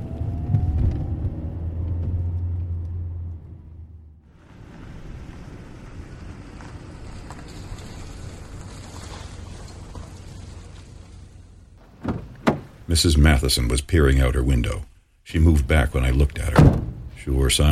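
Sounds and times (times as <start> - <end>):
road noise of car driving off: 0.0 - 12.8
car engine rumbling: 0.0 - 17.7
speech: 13.0 - 17.7.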